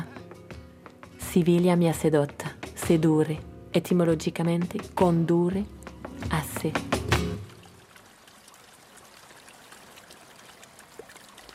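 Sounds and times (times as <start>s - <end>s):
speech: 1.3s - 7.0s
river water trickling: 5.8s - 11.5s
river water flowing between the centre of Seville and the Triana district: 7.1s - 11.5s.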